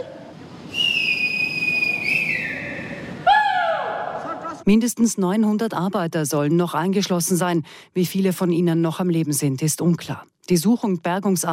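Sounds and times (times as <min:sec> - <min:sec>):
rescue workers blowing whistles: 0:00.7 - 0:03.2
speech: 0:04.7 - 0:11.5.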